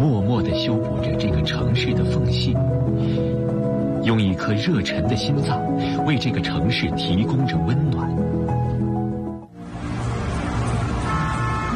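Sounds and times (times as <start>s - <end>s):
speech: 0.6s - 8.3s
dense traffic noise with engine rumble at busy intersection: 7.4s - 11.7s
long sustained car horn blasts at busy intersection: 11.0s - 11.7s.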